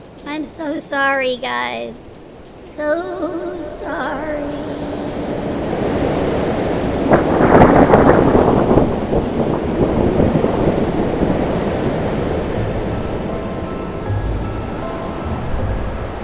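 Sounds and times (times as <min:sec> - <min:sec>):
gusting wind in a roaring storm: 0:00.0 - 0:16.2
rushing rain in a roaring storm: 0:00.0 - 0:16.2
speech: 0:00.3 - 0:02.1, 0:02.8 - 0:05.0
low thunder rumbles: 0:04.6 - 0:16.2.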